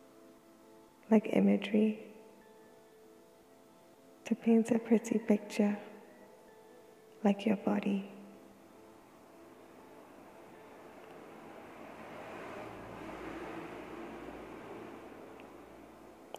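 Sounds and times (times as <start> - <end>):
speech: 1.1 - 2.1, 4.3 - 5.9, 7.2 - 8.1
ocean waves outside: 11.2 - 16.0.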